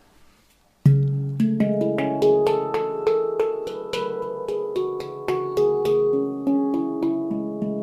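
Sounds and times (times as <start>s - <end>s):
handpan struck notes with warm metallic tone: 0.8s - 7.8s.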